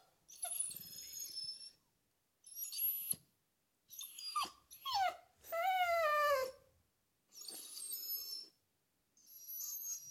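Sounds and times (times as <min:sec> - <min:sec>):
dog whimpering in high nasal whines: 0:00.3 - 0:01.8, 0:03.9 - 0:06.6, 0:07.4 - 0:08.6, 0:09.3 - 0:10.0.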